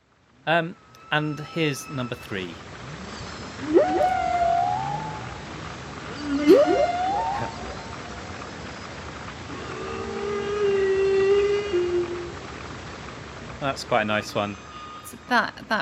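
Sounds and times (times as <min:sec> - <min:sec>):
steady underwater hiss: 0:00.0 - 0:15.1
speech: 0:00.4 - 0:02.7, 0:03.6 - 0:04.3, 0:13.6 - 0:14.7, 0:15.3 - 0:15.8
humpback whale song heard underwater: 0:03.5 - 0:05.5, 0:06.1 - 0:12.6.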